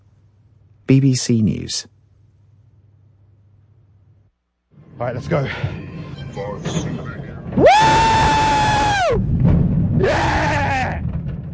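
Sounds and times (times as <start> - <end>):
speech: 0.9 - 2.0, 5.0 - 8.4
steady rumbling roller coaster ride noise: 4.8 - 11.5
riders screaming on a roller coaster loop: 7.6 - 9.3, 10.0 - 11.1.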